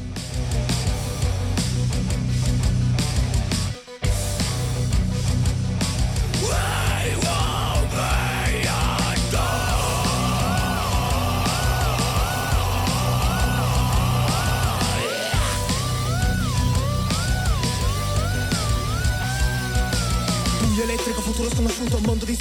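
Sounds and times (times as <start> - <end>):
heavy driving beat of a loud dense song: 0.0 - 22.3
strained shouted lead vocal singing in Italian: 6.2 - 22.3.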